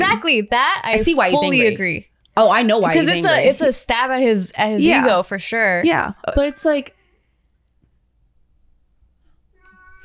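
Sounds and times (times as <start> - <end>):
speech: 0.1 - 7.0
cat meowing: 9.6 - 10.0.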